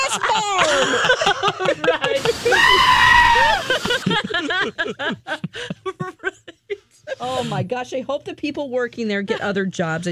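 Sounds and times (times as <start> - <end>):
short rhythmic bursts of laughter: 0.0 - 6.6
speech: 0.2 - 3.1, 7.4 - 10.0
voice imitating a screaming mountain goat: 2.4 - 3.6.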